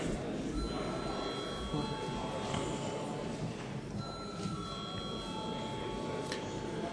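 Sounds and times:
low murmur of a large room: 0:00.0 - 0:06.9
parliamentary voting call bell ringing: 0:00.6 - 0:02.6, 0:04.0 - 0:06.9.

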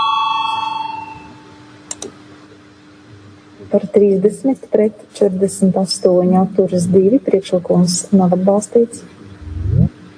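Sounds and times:
bell rung to call a vote in a legislative chamber: 0:00.0 - 0:01.5
sharp clicks: 0:01.9 - 0:02.1
speech: 0:03.7 - 0:09.2.

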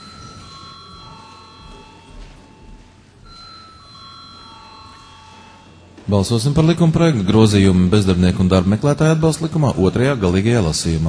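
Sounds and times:
electric bell ringing in a parliamentary session to call a vote: 0:00.0 - 0:07.1
low murmur of room noise: 0:00.0 - 0:11.0
speech: 0:06.1 - 0:11.0.

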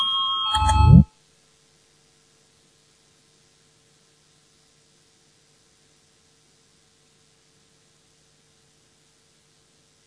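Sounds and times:
parliamentary voting bell ringing as a steady electronic tone: 0:00.0 - 0:01.1
low rising buzz: 0:00.6 - 0:01.1.

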